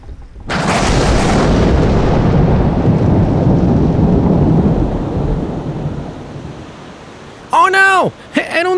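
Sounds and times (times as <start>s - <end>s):
loud crack of thunder in a thunderstorm: 0.4s - 6.7s
heavy rain pouring in a thunderstorm: 0.5s - 8.7s.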